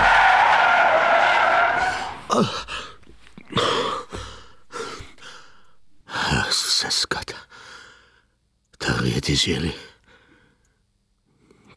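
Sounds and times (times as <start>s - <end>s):
Range Rover tires skidding under hard braking: 0.0s - 6.1s
person gasping and breathing heavily: 2.2s - 6.1s
speech: 2.4s - 2.8s, 9.3s - 9.9s.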